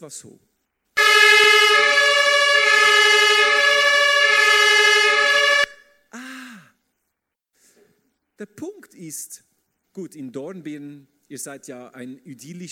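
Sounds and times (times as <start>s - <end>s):
speech: 0.0s - 0.5s, 8.4s - 12.7s
German emergency vehicle two-tone siren horn blaring: 1.0s - 6.0s.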